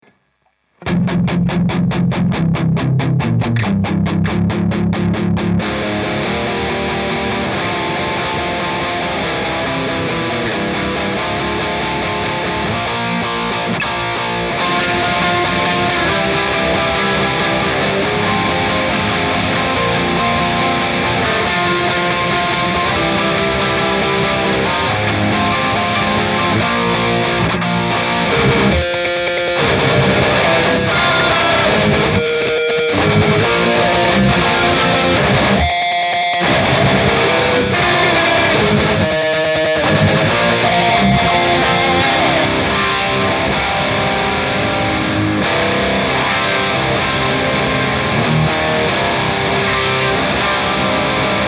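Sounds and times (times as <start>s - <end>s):
guitars: 0.8s - 51.4s.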